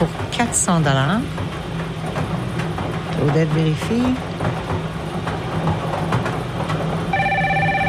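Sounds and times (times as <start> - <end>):
speech: 0.0 - 1.4, 3.2 - 4.6
constant rumbling noise: 0.0 - 7.8
telephone ringing with a steady electronic tone: 7.1 - 7.8.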